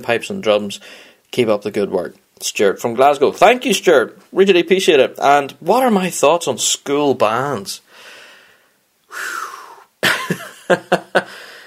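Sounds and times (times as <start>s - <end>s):
speech: 0.0s - 7.8s, 10.3s - 11.4s
person drawing a long breath: 7.9s - 9.9s, 11.3s - 11.6s
harsh throat-clearing coughs: 10.0s - 10.5s
person clearing throat roughly: 10.0s - 10.5s
laughter: 10.0s - 11.3s.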